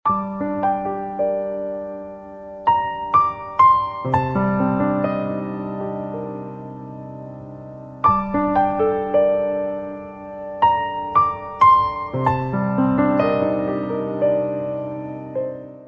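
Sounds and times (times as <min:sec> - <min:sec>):
sad piano ringtone: 0:00.1 - 0:15.8.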